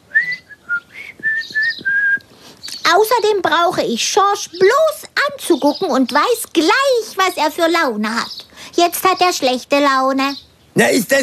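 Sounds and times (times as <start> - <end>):
person whistling a short wavering tune: 0.1 - 2.3
faint low thumps: 0.7 - 2.2
speech: 2.9 - 11.2.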